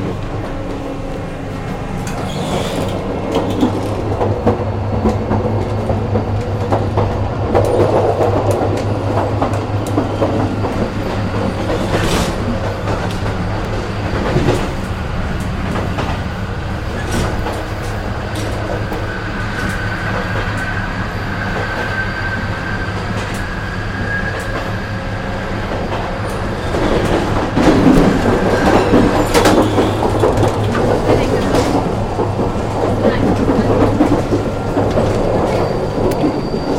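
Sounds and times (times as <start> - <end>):
moving passenger train interior rumble: 0.0 - 36.7
rail clicks of a passenger train carriage: 0.0 - 36.7.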